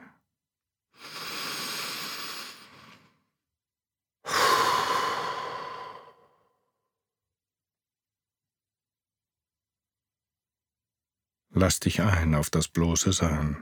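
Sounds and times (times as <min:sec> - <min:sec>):
breath inhaled through nose: 0:00.9 - 0:03.4, 0:04.3 - 0:06.5
loud exhale through mouth: 0:01.0 - 0:03.2, 0:04.3 - 0:06.4
speech: 0:11.6 - 0:13.5.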